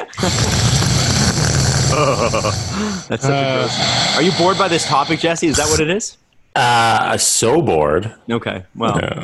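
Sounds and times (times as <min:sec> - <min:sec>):
speech: 0:00.1 - 0:00.6, 0:02.0 - 0:09.2
man breathing loudly through nose into microphone: 0:00.1 - 0:05.8.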